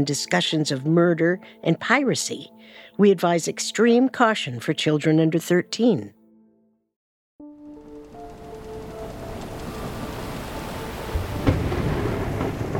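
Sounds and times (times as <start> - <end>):
speech: 0.0 - 6.2
brief tonal chord: 7.4 - 11.8
steady heavy rain hissing in a thunderstorm: 7.9 - 12.7
deep rolling rumble of thunder: 8.3 - 12.7
sharp thunderclap: 9.3 - 12.7.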